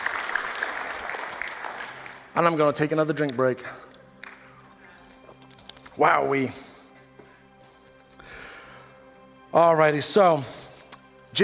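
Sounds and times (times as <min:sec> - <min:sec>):
audience applauding: 0:00.0 - 0:02.8
speech: 0:02.4 - 0:03.9, 0:06.0 - 0:06.7, 0:09.5 - 0:10.6.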